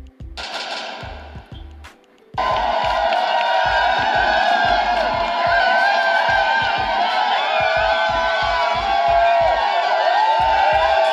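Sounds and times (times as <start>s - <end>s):
low thumping beats: 0.0s - 11.1s
large outdoor crowd cheering and screaming in the streets: 2.4s - 11.1s.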